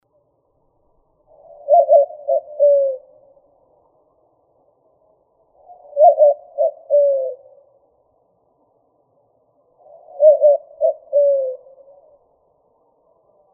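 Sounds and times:
white-winged dove cooing: 0:01.3 - 0:03.3, 0:05.6 - 0:07.7, 0:09.8 - 0:12.3.

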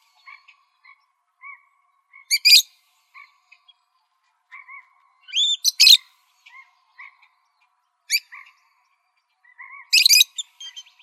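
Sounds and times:
parrots making soft gentle calls: 0:00.0 - 0:11.0
parrots squawking and screeching: 0:02.3 - 0:02.6, 0:04.5 - 0:06.6, 0:09.7 - 0:10.8.

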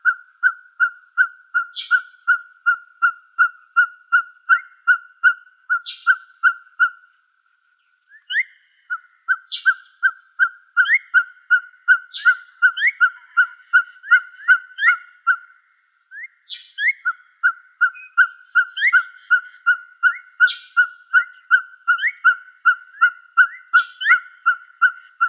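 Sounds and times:
Ferruginous Pygmy-Owl giving mellow hollow toots in Arizona: 0:00.0 - 0:07.0, 0:08.1 - 0:25.2
other birds giving sharp chips and rising squeaky notes: 0:01.6 - 0:02.4, 0:05.8 - 0:06.6, 0:10.8 - 0:15.4, 0:16.3 - 0:25.2.

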